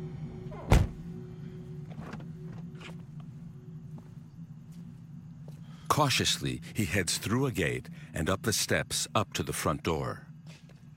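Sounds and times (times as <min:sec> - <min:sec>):
low hum: 0:00.0 - 0:10.9
pickup truck door shutting outside an apartment: 0:00.6 - 0:01.0
speech: 0:05.9 - 0:10.3.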